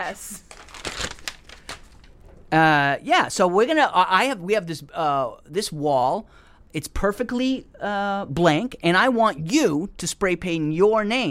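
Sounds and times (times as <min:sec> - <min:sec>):
speech: 0:00.0 - 0:01.0, 0:02.5 - 0:11.3
single piece of paper crinkling and rustling as it is handled: 0:00.1 - 0:02.6.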